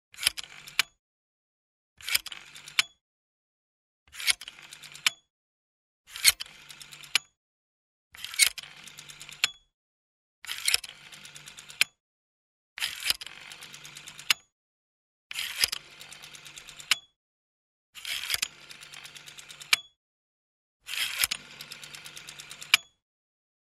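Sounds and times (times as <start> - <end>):
rotary telephone dialing a number: 0.2 - 0.8, 2.0 - 3.0, 4.2 - 5.1, 6.1 - 7.2, 8.2 - 9.5, 10.5 - 11.9, 12.8 - 14.4, 15.4 - 17.0, 18.0 - 19.8, 20.9 - 23.0.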